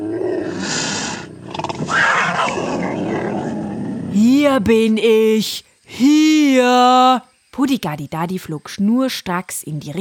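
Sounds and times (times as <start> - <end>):
jaguar roaring: 0.0 - 4.2
speech: 4.6 - 9.9.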